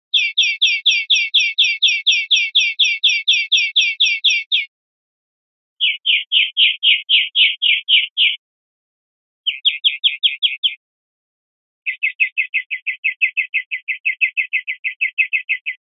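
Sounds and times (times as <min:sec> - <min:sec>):
greenfinch calls: 0:00.1 - 0:04.7, 0:05.8 - 0:08.4, 0:09.4 - 0:10.8, 0:11.9 - 0:15.8.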